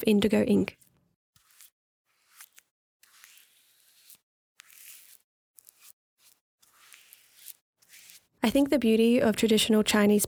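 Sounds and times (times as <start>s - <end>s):
speech: 0.0s - 0.8s, 8.4s - 10.2s
rice paper sheet rustling as it is unfurled and smoothed on a workbench: 0.7s - 8.4s.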